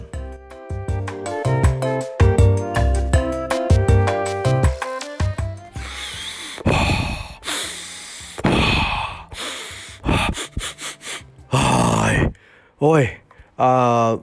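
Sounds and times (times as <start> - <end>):
melodic music: 0.0 - 6.7
deep forceful breathing in a breathing exercise: 5.7 - 13.6
speech: 12.8 - 13.8.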